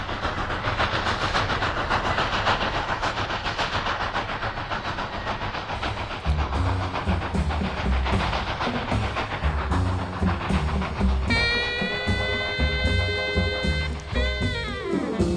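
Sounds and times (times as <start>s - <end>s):
train rumbling past on the tracks: 0.0s - 15.3s
long multi-tone train horn blast: 11.3s - 15.3s.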